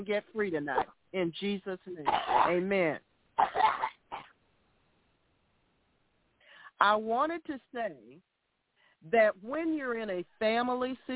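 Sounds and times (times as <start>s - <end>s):
speech: 0.0s - 4.0s, 6.8s - 8.3s, 9.0s - 11.1s
person coughing: 2.1s - 2.6s, 3.4s - 4.3s.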